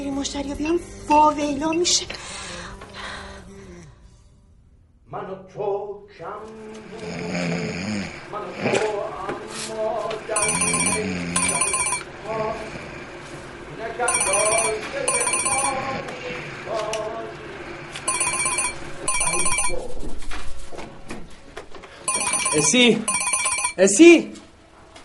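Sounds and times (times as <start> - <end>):
speech: 0.2 - 2.6, 5.1 - 12.8, 13.8 - 17.4, 19.0 - 20.1, 22.5 - 23.2, 23.8 - 24.4
telephone ringing in trilling bells: 10.3 - 12.5, 14.0 - 16.4, 17.9 - 19.9, 22.0 - 24.0.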